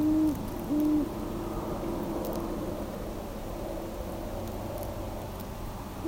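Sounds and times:
great horned owl hooting: 0.0s - 1.2s
steady low rumble: 0.0s - 6.0s.

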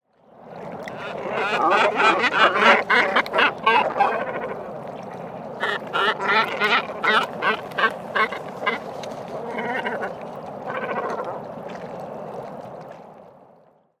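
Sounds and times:
Great Cormorant Phalacrocorax carbo sinensis calling: 1.0s - 4.7s, 5.6s - 11.4s.

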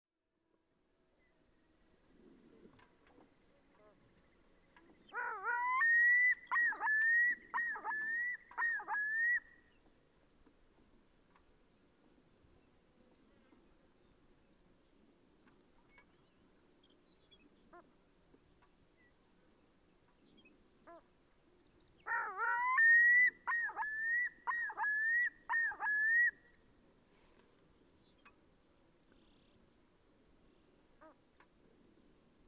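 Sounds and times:
Pacific loon Gavia pacifica calling: 5.1s - 9.5s, 22.0s - 26.4s.

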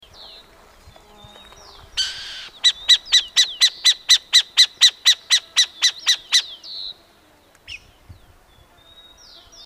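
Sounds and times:
Burrowing Owl Athene cunicularia calling: 2.0s - 6.9s.

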